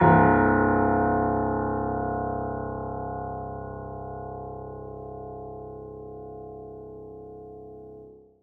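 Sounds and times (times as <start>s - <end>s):
piano note C1: 0.0s - 8.1s.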